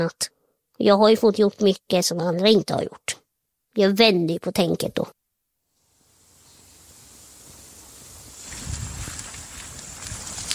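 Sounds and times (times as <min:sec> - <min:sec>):
speech: 0:00.0 - 0:03.2, 0:03.8 - 0:05.2
crackles: 0:05.7 - 0:10.5
hiss of rain outdoors near water: 0:05.7 - 0:10.5
steady outdoor wind near water: 0:05.8 - 0:10.5
wind gusts buffeting the microphone: 0:08.0 - 0:10.5.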